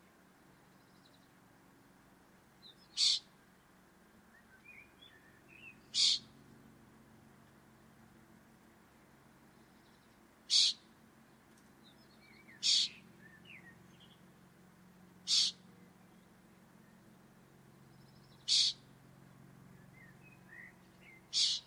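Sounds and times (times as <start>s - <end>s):
low background hum: 0.0s - 21.6s
faint chirps from other birds: 0.4s - 1.3s, 2.6s - 3.4s, 4.3s - 6.3s, 11.8s - 14.2s, 15.2s - 17.0s, 17.7s - 18.9s, 19.7s - 21.6s
bird calling brief sharp high notes: 3.0s - 3.3s, 5.9s - 6.3s, 10.5s - 10.8s, 12.5s - 13.4s, 15.3s - 15.6s, 18.4s - 18.9s, 20.0s - 21.6s.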